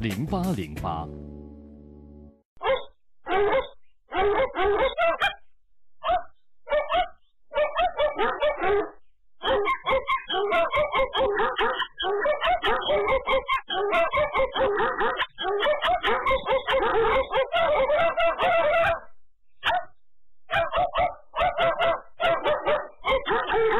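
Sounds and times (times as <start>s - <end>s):
speech: 0.0s - 1.3s
small dog barking excitedly: 2.6s - 5.4s, 6.0s - 19.9s, 20.5s - 23.7s.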